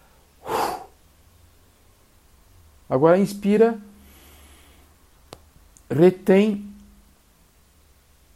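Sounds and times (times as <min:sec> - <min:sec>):
person exhaling forcefully during a breathing exercise: 0:00.4 - 0:01.0
speech: 0:02.9 - 0:03.9, 0:05.9 - 0:06.7.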